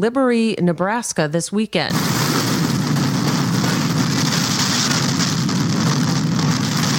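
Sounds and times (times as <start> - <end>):
speech: 0.0 - 2.5
tornado roaring through a field: 1.9 - 6.9.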